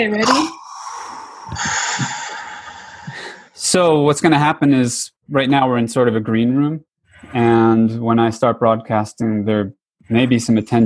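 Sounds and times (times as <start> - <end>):
speech: 0.0 - 0.6, 3.7 - 10.8
person taking a quick breath before speaking: 0.5 - 3.6.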